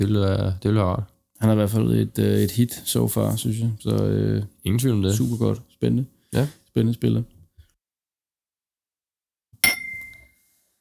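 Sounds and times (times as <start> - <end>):
speech: 0.0 - 7.3
glasses clinking in a toast: 9.6 - 10.4.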